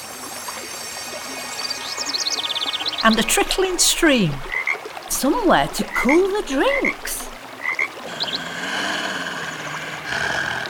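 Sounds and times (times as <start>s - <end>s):
speech: 3.0s - 4.5s, 5.2s - 7.2s
wild animal roar echoing through the woods of a city park: 8.0s - 10.6s.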